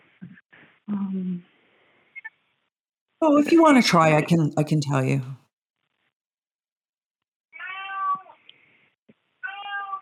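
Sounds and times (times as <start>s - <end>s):
speech: 0.9s - 1.5s, 3.2s - 5.4s
cat meowing: 7.5s - 8.4s, 9.4s - 10.0s.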